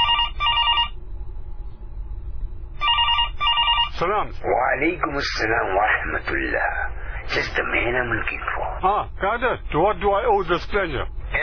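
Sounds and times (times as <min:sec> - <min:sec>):
telephone ringing in a double-burst pattern: 0:00.0 - 0:01.0, 0:02.8 - 0:04.0
low rumble of room noise: 0:00.0 - 0:11.4
speech: 0:04.0 - 0:11.4.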